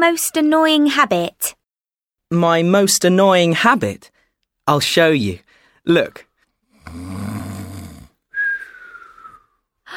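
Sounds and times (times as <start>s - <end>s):
speech: 0.0s - 1.6s, 2.3s - 4.1s, 4.7s - 6.3s, 6.9s - 7.4s
person imitating snoring: 6.8s - 8.2s.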